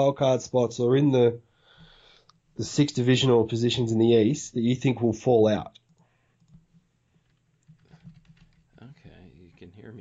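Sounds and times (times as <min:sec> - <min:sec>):
speech: 0:00.0 - 0:01.5, 0:02.6 - 0:05.8
computer keyboard typing: 0:05.9 - 0:08.8.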